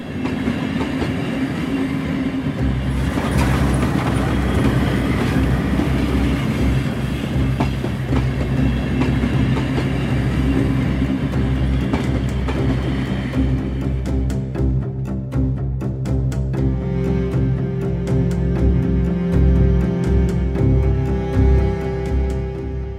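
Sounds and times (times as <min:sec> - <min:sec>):
train wheels clickety-clack over track joints: 0:00.0 - 0:13.4
train rumbling along rails: 0:00.0 - 0:22.9.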